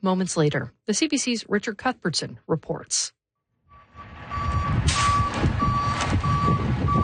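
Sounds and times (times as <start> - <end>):
speech: 0.0 - 3.2
tow truck diesel engine rumbling: 3.7 - 7.0
tow truck reverse alarm beeping: 3.7 - 7.0.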